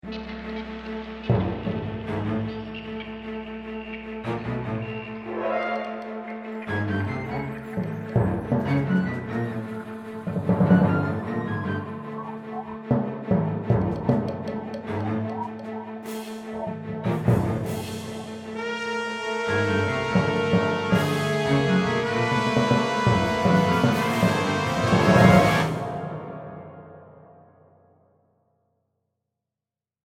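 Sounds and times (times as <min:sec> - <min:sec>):
thriller horror music: 0:00.0 - 0:27.9.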